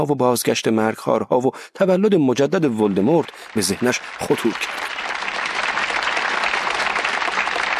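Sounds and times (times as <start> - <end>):
speech: 0.0 - 5.0
applause from a group: 2.5 - 7.7.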